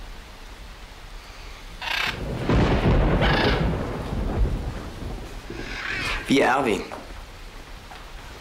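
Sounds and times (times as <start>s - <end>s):
steady storm noise: 1.6s - 8.4s
bright crackling thunder bursts: 1.8s - 7.4s
deep rolling thunder rumbling: 1.8s - 8.4s
speech: 6.3s - 7.0s.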